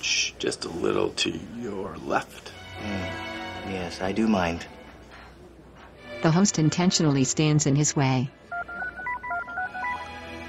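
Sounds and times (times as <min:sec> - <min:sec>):
faint steady hum: 0:00.0 - 0:10.4
speech: 0:00.4 - 0:04.8, 0:06.2 - 0:08.4
telephone keypad dialing tones: 0:08.5 - 0:10.0.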